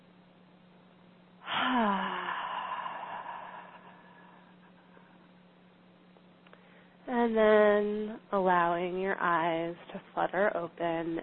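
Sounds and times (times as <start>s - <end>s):
long breathy exhale with a faint voiced sigh: 1.4s - 5.0s
speech: 7.2s - 11.2s.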